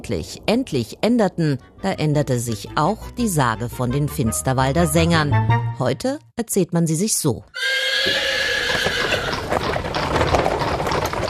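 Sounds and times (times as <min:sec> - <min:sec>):
speech: 0:00.0 - 0:08.3
horse neighing loudly: 0:07.5 - 0:09.8
hooves and rolling cart wheels of horse-drawn cart: 0:07.6 - 0:11.2.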